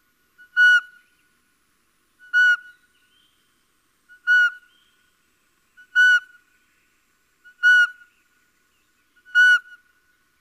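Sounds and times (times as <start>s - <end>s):
little owl whistled calls: 0.4s - 1.1s, 2.2s - 2.8s, 4.1s - 4.9s, 5.8s - 6.4s, 7.4s - 8.1s, 9.2s - 9.9s.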